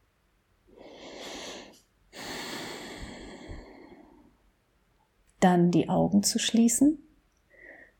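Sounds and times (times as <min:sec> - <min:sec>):
deep breaths: 0:00.7 - 0:04.4, 0:07.5 - 0:07.9
speech: 0:05.4 - 0:07.1.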